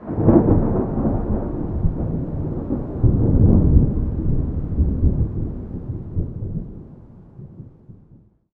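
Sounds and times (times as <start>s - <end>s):
thunder rumble from a lightning strike: 0.0s - 8.3s.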